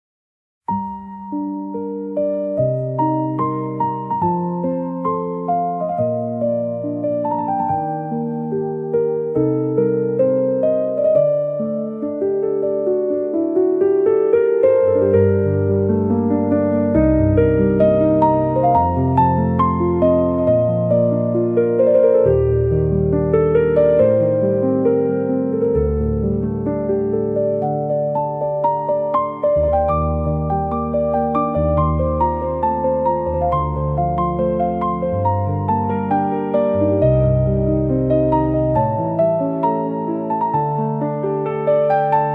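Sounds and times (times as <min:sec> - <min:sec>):
calm piano: 0:00.6 - 0:42.3.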